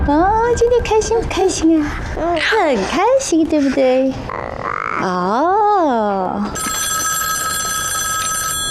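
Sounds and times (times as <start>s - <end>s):
speech: 0.1s - 6.7s
home telephone bell ringing: 6.5s - 8.7s.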